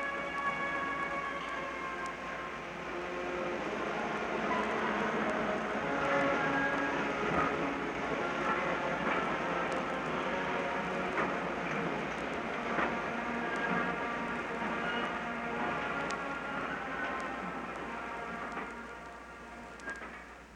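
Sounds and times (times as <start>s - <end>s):
train rolling slowly out of station rumbling: 0.0s - 20.5s.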